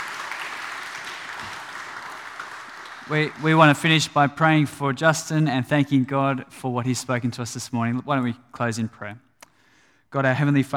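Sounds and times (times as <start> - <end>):
church audience applauding: 0.0 - 4.0
speech: 3.1 - 9.3, 10.1 - 10.7.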